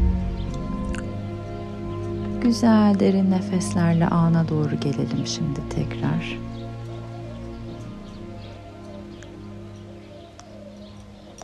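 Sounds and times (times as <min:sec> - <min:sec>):
low droning hum: 0:00.0 - 0:10.2
birds chirping: 0:00.0 - 0:11.4
speech: 0:02.4 - 0:06.6.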